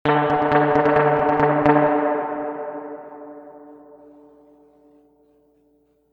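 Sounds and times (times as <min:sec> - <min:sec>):
three-spring reverb tank medium staccato: 0:00.1 - 0:04.7.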